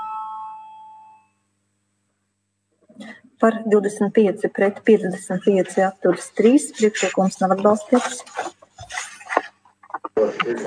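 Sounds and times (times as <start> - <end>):
bell rung to call a vote in a parliament chamber: 0.0 - 1.4
speech: 3.4 - 8.6, 10.5 - 10.6.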